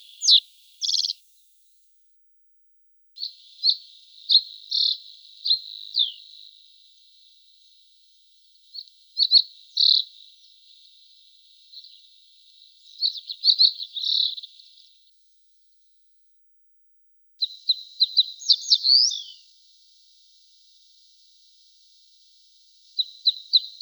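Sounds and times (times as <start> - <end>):
Pine bunting singing high trilled phrases: 0.0 - 1.2, 3.2 - 7.9, 8.6 - 10.8, 11.4 - 14.9, 17.4 - 19.5, 22.8 - 23.7.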